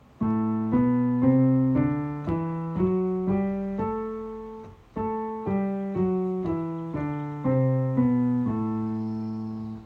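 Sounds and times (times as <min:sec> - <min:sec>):
piano in dorian mode: 0:00.0 - 0:09.8.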